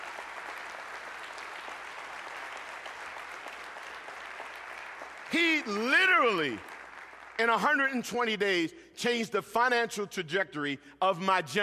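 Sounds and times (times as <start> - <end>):
large audience applauding: 0.0 - 7.9
speech: 5.3 - 6.7, 7.4 - 11.6.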